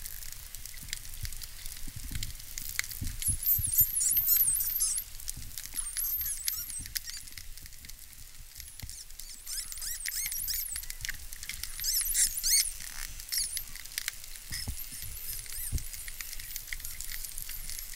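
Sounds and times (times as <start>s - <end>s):
crackling underwater noise: 0.0s - 17.9s
dolphin whistles: 3.2s - 5.0s, 5.8s - 7.3s, 8.7s - 10.8s, 11.7s - 13.7s, 14.5s - 17.7s.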